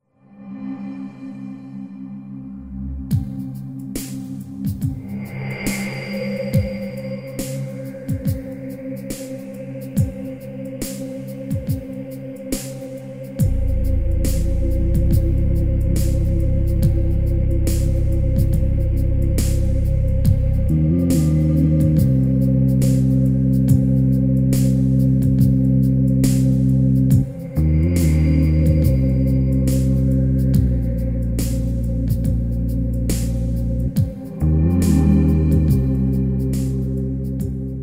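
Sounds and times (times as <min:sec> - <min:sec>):
ambient atmosphere: 0:00.1 - 0:37.8.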